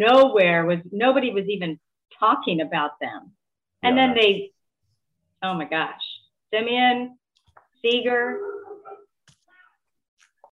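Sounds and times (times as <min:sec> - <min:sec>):
speech: 0:00.0 - 0:04.6, 0:05.4 - 0:07.2, 0:07.8 - 0:09.0
dog barking outside: 0:08.3 - 0:09.1.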